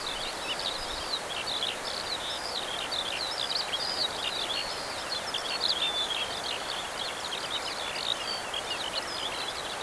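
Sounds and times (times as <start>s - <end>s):
larks singing: 0.0s - 9.8s.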